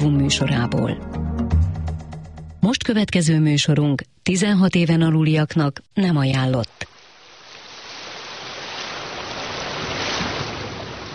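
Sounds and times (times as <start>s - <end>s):
speech: 0.3s - 1.2s, 2.6s - 6.9s
sea waves breaking with surf rushing: 6.9s - 11.1s.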